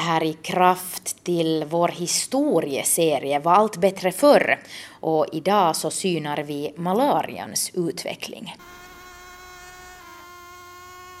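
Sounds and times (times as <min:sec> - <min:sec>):
speech: 0:00.0 - 0:08.8
mosquito whining: 0:08.6 - 0:11.1.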